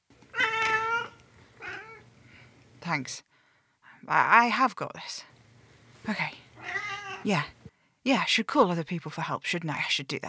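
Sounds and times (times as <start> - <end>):
cat meowing: 0.3 - 2.0, 6.6 - 7.3
speech: 2.8 - 3.3, 4.0 - 5.3, 6.0 - 10.2.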